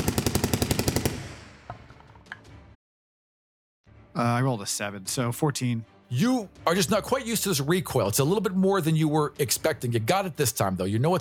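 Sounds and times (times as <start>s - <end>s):
machine gun firing a full drum of bullets: 0.0s - 1.6s
speech: 4.2s - 11.1s.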